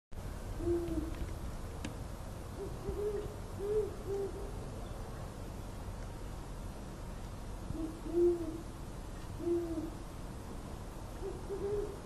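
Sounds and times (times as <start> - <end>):
constant low hiss: 0.2 - 12.0
Great horned owl hooting low and muffled in Davis: 0.6 - 1.2, 2.6 - 4.6, 7.7 - 8.7, 9.4 - 10.0, 11.2 - 12.0.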